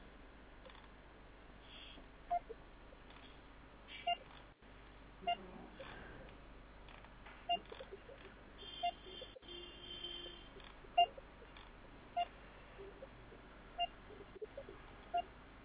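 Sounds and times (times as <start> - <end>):
landline phone keypad dialing tones: 2.3 - 2.6, 7.5 - 9.4, 10.1 - 11.5, 12.2 - 13.1, 13.8 - 15.6.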